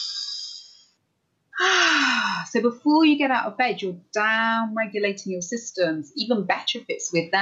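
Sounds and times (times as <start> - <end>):
deep belly breath: 1.6 - 2.5
speech: 2.5 - 7.3.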